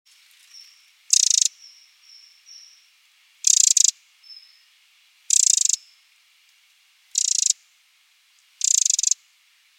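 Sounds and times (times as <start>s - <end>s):
Eurasian wren calling in rapid ticking rattles, Troglodytes troglodytes: 0.5s - 2.7s, 3.4s - 4.4s, 5.3s - 5.9s, 7.1s - 7.6s, 8.4s - 9.2s.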